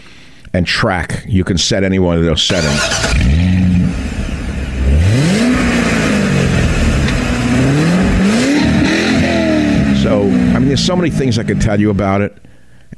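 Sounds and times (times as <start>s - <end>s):
speech: 0.5s - 3.6s, 10.8s - 12.9s
new Corvette C8 sports car engine revving: 2.5s - 12.2s.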